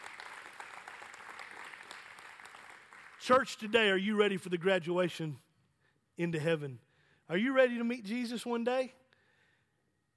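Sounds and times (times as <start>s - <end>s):
large church audience applauding graduates: 0.0s - 3.7s
speech: 3.2s - 5.4s, 6.2s - 9.0s.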